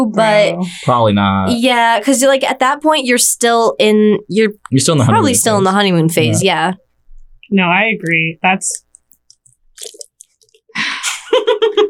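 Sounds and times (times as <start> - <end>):
speech: 0.0 - 6.8, 7.5 - 8.8
plastic water bottle crinkling and being squeezed: 8.7 - 10.7
laughter: 10.8 - 11.8.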